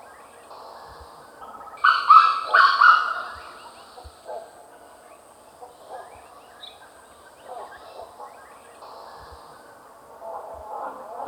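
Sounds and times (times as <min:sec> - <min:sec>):
Grey Junglefowl crowing call: 0:01.8 - 0:03.8.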